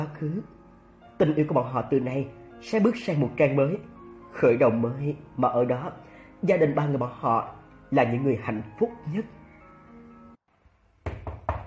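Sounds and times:
speech: 0.0s - 0.6s, 1.2s - 9.4s
soft sustained music: 0.0s - 10.4s
heavy knocking on a door: 11.0s - 11.6s.

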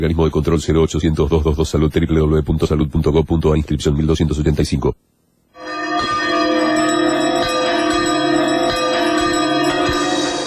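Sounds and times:
speech: 0.0s - 5.0s
two bells ringing: 5.6s - 10.4s.

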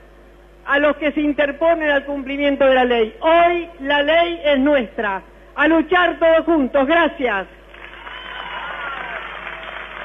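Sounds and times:
speech: 0.7s - 7.6s
crowd applause at a street march rally: 7.7s - 10.0s.

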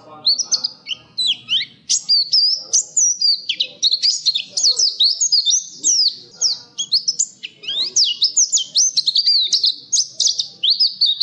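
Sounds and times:
nightingale singing sweet whistled slurs and quick chirping notes: 0.0s - 11.2s.

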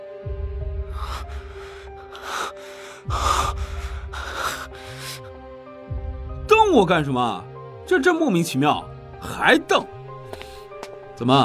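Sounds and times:
man panting with rapid, rasping breaths: 0.9s - 5.4s
speech: 6.7s - 9.9s, 11.2s - 11.4s.

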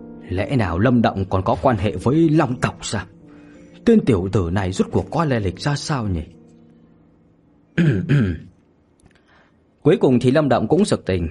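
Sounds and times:
speech: 0.2s - 3.2s, 3.8s - 6.4s, 7.8s - 8.5s, 9.8s - 11.2s
embarrassed throat clearing in a narrated story: 7.8s - 8.6s.

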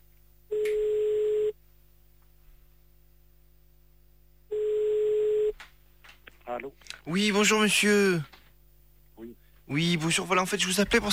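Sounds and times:
telephone line hum: 0.0s - 11.1s
telephone ringing on the line during an outgoing call: 0.5s - 1.6s, 4.5s - 5.5s
speech: 6.6s - 8.4s, 9.7s - 11.1s.

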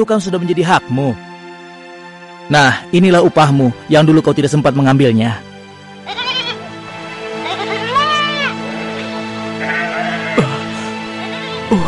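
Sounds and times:
speech: 0.0s - 1.3s, 2.5s - 5.5s
herd of goats bleating: 6.0s - 11.8s.

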